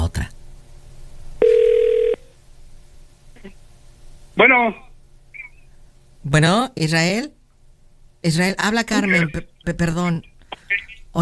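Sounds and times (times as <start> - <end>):
telephone electronic ringing tone: 1.4 - 2.2
speech: 4.4 - 4.9, 6.3 - 7.4, 8.2 - 11.2.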